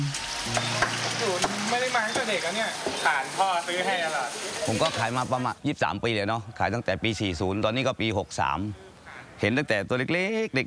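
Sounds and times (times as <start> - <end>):
chicken frying in hot oil at a fried chicken stall: 0.0 - 5.6
speech: 2.3 - 10.6.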